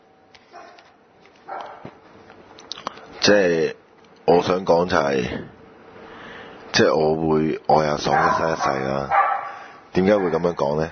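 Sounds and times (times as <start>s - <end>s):
dog barking: 0.5s - 0.8s, 1.5s - 1.9s, 8.1s - 10.5s
speech: 3.3s - 3.8s, 4.4s - 5.6s, 6.8s - 9.2s, 10.0s - 10.9s.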